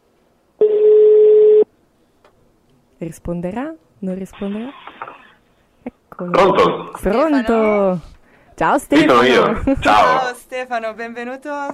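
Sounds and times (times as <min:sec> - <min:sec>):
telephone ringback tone while placing a call: 0:00.6 - 0:01.6
speech: 0:03.0 - 0:04.9, 0:06.2 - 0:11.7.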